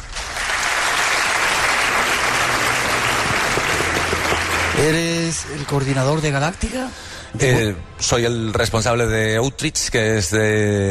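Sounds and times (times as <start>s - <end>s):
live audience applause: 0.0s - 6.5s
speech: 4.8s - 10.9s.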